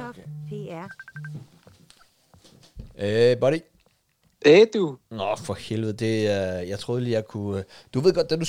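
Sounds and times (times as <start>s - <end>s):
messaging app incoming call ringtone: 0.0s - 1.5s
speech: 0.2s - 1.6s, 2.4s - 3.7s, 4.4s - 8.4s.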